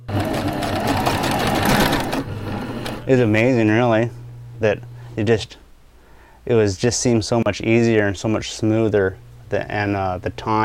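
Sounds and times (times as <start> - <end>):
skin sewing machine whirring as it stitches fur hats: 0.0 - 3.4
speech: 3.1 - 5.6, 6.5 - 10.6.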